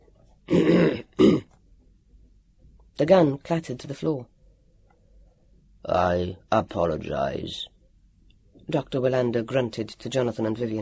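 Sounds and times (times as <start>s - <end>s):
man clearing throat: 0.5s - 1.5s
speech: 3.0s - 4.3s, 5.8s - 7.7s, 8.7s - 10.7s.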